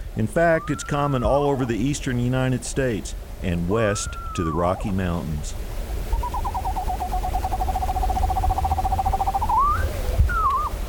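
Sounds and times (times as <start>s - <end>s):
low rumble: 0.0s - 10.8s
speech: 0.2s - 5.7s
small screech owl giving a rapid trill: 0.4s - 1.7s, 3.8s - 5.0s, 5.8s - 10.8s.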